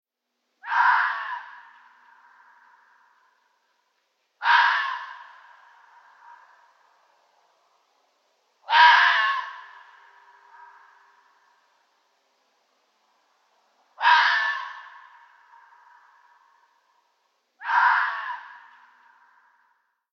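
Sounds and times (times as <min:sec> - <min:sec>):
red fox barking: 0:00.6 - 0:03.5, 0:04.4 - 0:06.8, 0:08.6 - 0:11.7, 0:14.0 - 0:16.8, 0:17.6 - 0:19.6.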